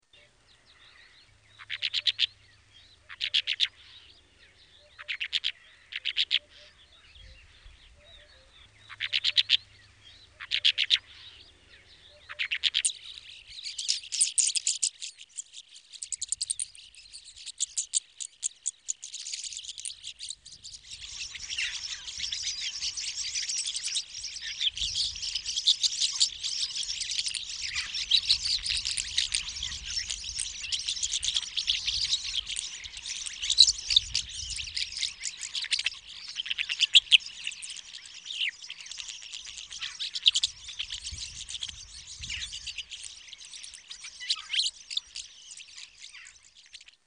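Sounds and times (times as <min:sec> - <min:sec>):
rosy starling calling: 0:00.7 - 0:47.0.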